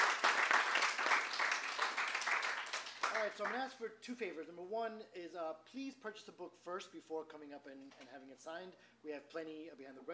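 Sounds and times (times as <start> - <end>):
crowd applauding: 0.0 - 3.6
speech: 3.2 - 10.1.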